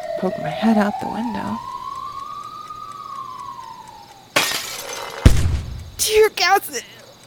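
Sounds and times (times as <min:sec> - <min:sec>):
police car siren wailing outside: 0:00.0 - 0:04.4
speech: 0:00.2 - 0:01.7, 0:06.1 - 0:07.0
glass shattering: 0:04.4 - 0:05.3.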